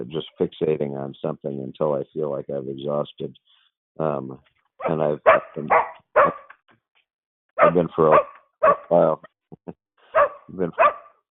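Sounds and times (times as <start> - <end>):
speech: 0.0 - 6.4, 7.6 - 9.8, 10.5 - 11.3
dogs barking at someone arriving home: 4.8 - 6.5, 7.6 - 9.0, 10.1 - 11.3.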